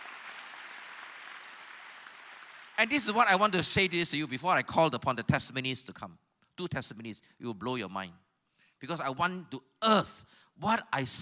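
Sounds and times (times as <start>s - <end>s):
large crowd applauding: 0.0s - 4.4s
speech: 2.8s - 8.2s, 8.8s - 11.1s.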